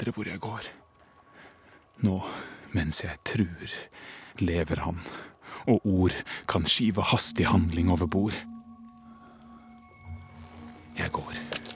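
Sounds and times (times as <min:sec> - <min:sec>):
speech: 0:00.0 - 0:00.8, 0:02.0 - 0:08.5, 0:11.0 - 0:11.7
bell ringing: 0:07.3 - 0:11.7.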